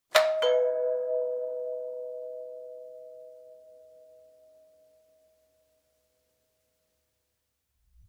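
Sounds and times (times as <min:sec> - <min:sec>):
classic doorbell chime: 0:00.1 - 0:05.1.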